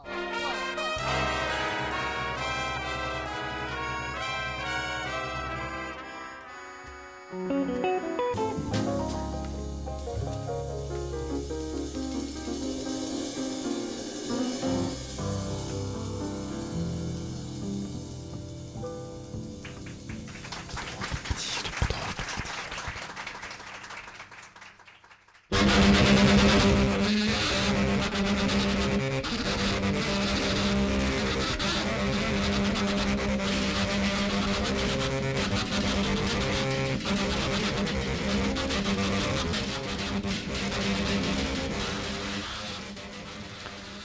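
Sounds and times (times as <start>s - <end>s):
wailing overblown tenor saxophone: 0.0s - 8.4s, 25.7s - 44.0s
free jazz octet with tenor saxophone and drums: 0.0s - 21.6s, 25.5s - 44.0s
clattering drums: 8.4s - 23.1s, 30.3s - 44.0s.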